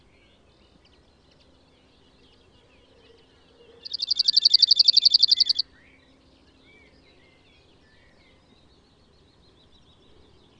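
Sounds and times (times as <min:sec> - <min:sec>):
cirl bunting rattling trill: 0:03.9 - 0:05.6.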